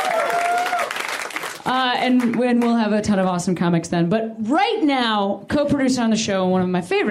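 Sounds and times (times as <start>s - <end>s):
audience applause: 0.0s - 2.3s
speech: 1.7s - 7.0s.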